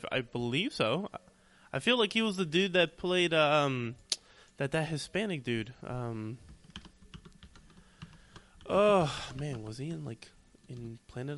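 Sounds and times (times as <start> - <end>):
speech: 0.0 - 4.0, 4.6 - 6.4, 8.7 - 11.3
someone typing on a computer keyboard: 6.4 - 8.6.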